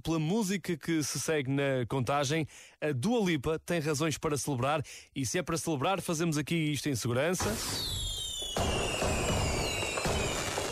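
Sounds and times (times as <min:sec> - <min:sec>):
speech: 0:00.0 - 0:08.0
fireworks exploding: 0:07.4 - 0:10.6
high whistling tones streaking overhead: 0:07.6 - 0:10.6.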